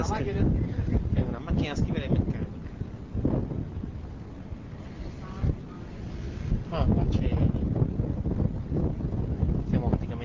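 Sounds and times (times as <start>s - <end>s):
speech: 0.0s - 1.0s
strong wind on a ship buffeting the microphone: 0.0s - 10.2s.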